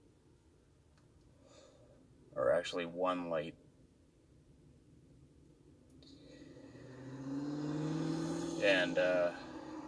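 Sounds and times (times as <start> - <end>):
speech: 2.4 - 3.6
police car engine revving and whining driving fast through a parking lot: 6.2 - 9.8.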